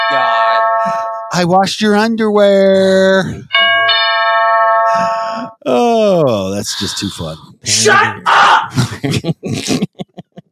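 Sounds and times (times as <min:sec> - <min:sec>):
doorbell chiming in two tones: 0:00.0 - 0:01.4, 0:03.5 - 0:05.2
speech: 0:01.4 - 0:03.5, 0:05.0 - 0:10.0
laughter: 0:08.7 - 0:10.5.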